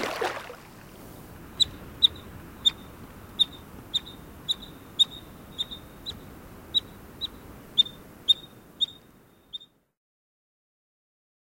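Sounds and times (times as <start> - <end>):
faint background hiss: 0.0 - 10.0
River otter short sharp high chirps: 1.6 - 9.7.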